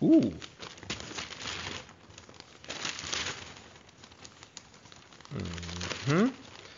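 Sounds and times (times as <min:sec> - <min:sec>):
person murmuring: 0:00.0 - 0:00.4, 0:05.3 - 0:06.4
speech: 0:00.0 - 0:00.5, 0:05.3 - 0:06.4
paper magazine pages being turned: 0:00.0 - 0:06.7.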